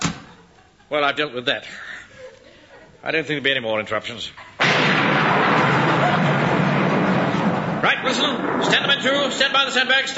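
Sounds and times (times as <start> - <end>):
speech: 0.9 - 1.9, 3.0 - 4.9, 7.8 - 10.1
heavy thunder clap: 4.6 - 10.1.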